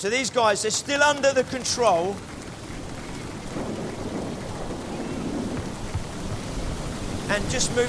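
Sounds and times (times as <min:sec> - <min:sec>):
speech: 0:00.0 - 0:02.4, 0:07.3 - 0:07.8
steady dense rain: 0:00.0 - 0:07.8
deep rolling thunder: 0:02.2 - 0:07.8.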